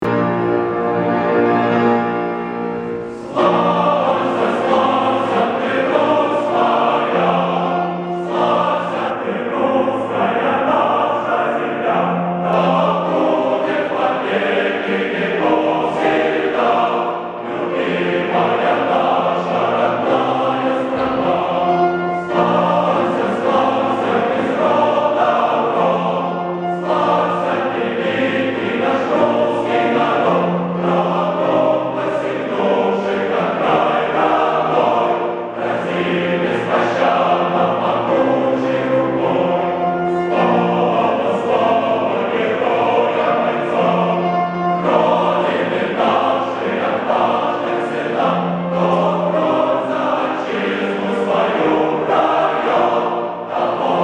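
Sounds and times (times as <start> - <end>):
choir singing: 0.0 - 54.0.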